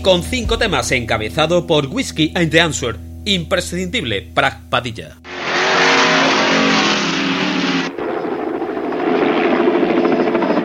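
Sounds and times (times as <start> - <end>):
speech: 0.0 - 5.2
helicopter flying overhead: 5.3 - 10.6.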